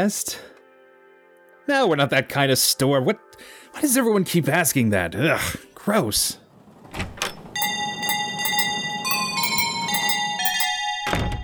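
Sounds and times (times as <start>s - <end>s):
speech: 0.0s - 0.5s, 1.7s - 7.1s
shop door bell chiming: 7.3s - 11.0s.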